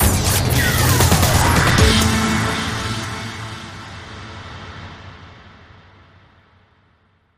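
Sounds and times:
sweep sting: 0.3s - 5.2s.

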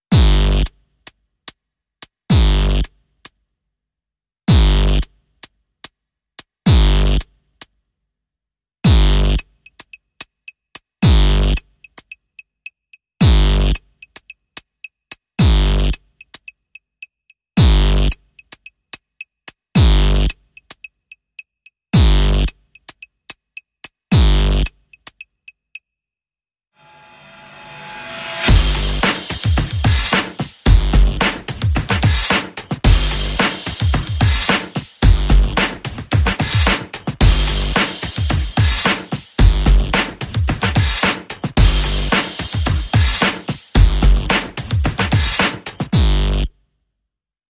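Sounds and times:
percussion: 0.0s - 3.4s, 4.5s - 7.8s, 8.8s - 26.0s, 27.0s - 46.4s.

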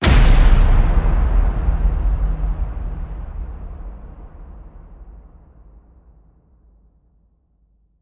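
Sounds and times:
big cannon fire: 0.0s - 5.7s.

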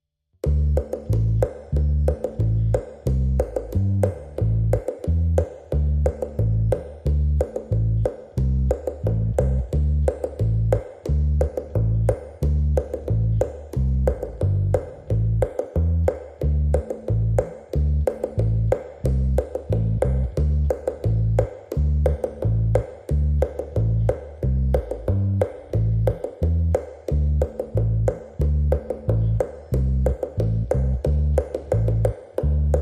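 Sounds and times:
bass: 0.0s - 32.7s
percussion: 0.4s - 32.7s.

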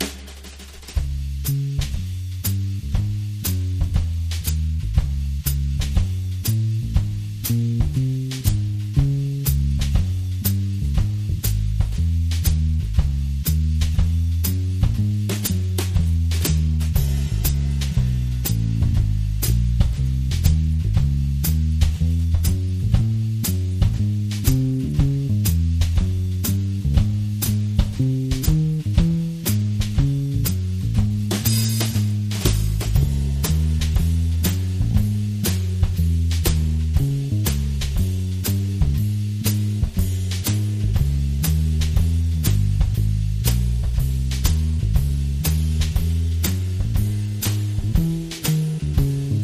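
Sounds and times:
easy swing drums: 0.0s - 49.4s
swing bass: 0.0s - 49.4s.

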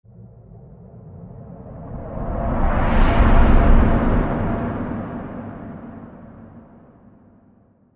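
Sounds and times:
mountain breeze whooshing: 1.8s - 6.2s.

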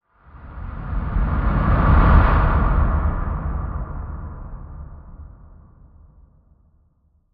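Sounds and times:
expanse winds whoosh: 0.2s - 5.4s.

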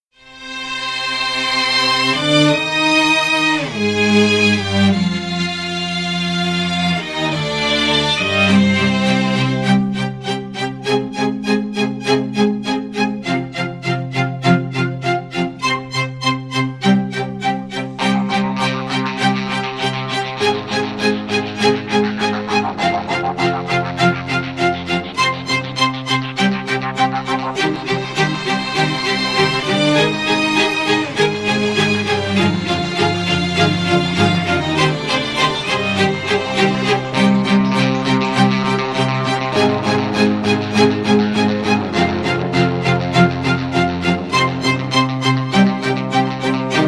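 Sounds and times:
string instruments playing: 0.2s - 46.8s.

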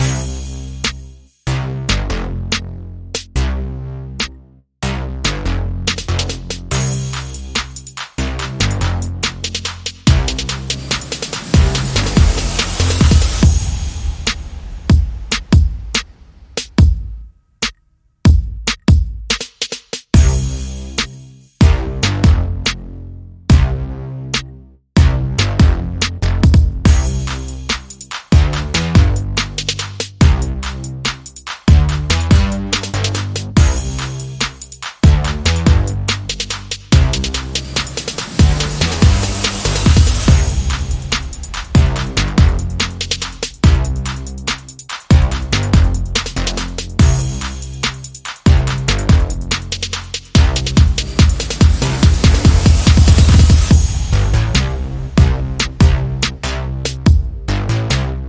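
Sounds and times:
drums: 0.0s - 2.6s, 5.3s - 22.8s, 23.5s - 23.8s, 24.4s - 58.2s
bass: 0.0s - 58.2s
sound effects: 10.1s - 16.6s, 36.1s - 45.6s, 50.4s - 56.8s.

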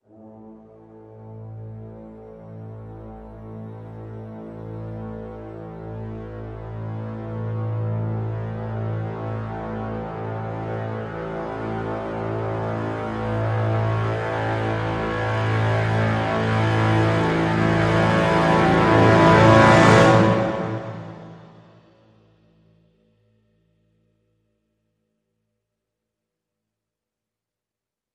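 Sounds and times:
low brass crescendo swell: 0.1s - 22.1s.

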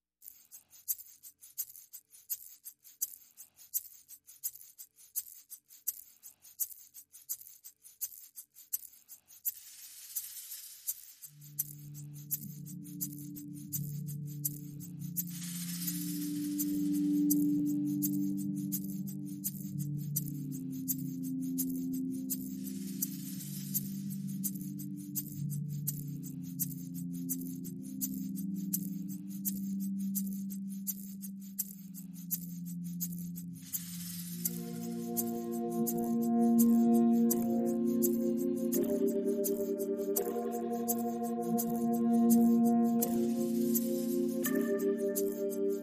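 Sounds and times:
percussion: 0.0s - 45.8s
synth pads: 11.4s - 31.0s, 31.6s - 45.8s.

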